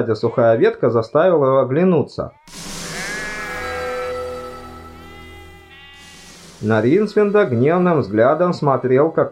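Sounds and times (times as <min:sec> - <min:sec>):
speech: 0:00.0 - 0:02.6, 0:06.6 - 0:09.3
plaintive bleating from inside a sack: 0:02.4 - 0:06.2.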